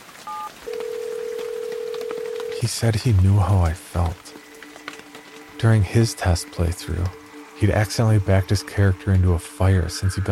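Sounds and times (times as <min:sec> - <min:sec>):
faint crackly hiss: 0:00.0 - 0:10.2
two-tone cell phone keypad beep: 0:00.3 - 0:00.5
speech: 0:02.6 - 0:04.3, 0:05.6 - 0:10.2.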